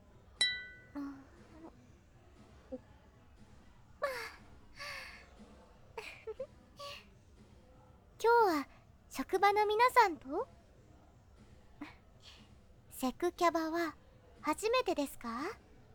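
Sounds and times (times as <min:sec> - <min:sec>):
quiet hum: 0:00.0 - 0:15.9
glasses clinking in a toast at a cabaret club: 0:00.4 - 0:01.0
speech: 0:09.4 - 0:10.6, 0:13.0 - 0:15.6.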